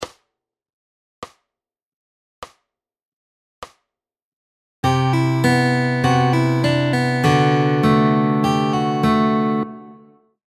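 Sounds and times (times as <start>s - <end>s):
fingerpicked guitar lick: 4.8s - 10.1s.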